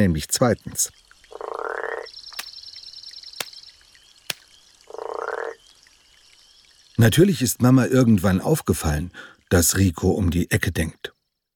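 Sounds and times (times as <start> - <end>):
speech: 0.0 - 1.0, 7.0 - 11.2
frog croaking loud and raspy: 1.2 - 5.8.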